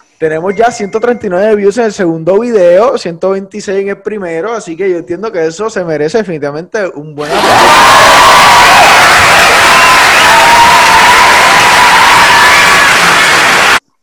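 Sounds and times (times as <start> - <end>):
speech: 0.2 - 9.1
loud dense crowd cheering with shouts and whoops: 7.2 - 13.8
applause: 7.3 - 13.8.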